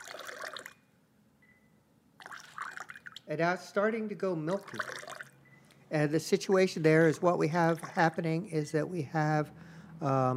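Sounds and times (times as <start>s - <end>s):
cold tap water dribbled into a glass in the New York City area: 0.0s - 0.9s, 2.2s - 3.3s, 4.5s - 5.4s, 7.6s - 8.2s
speech: 3.3s - 5.1s, 5.9s - 10.3s.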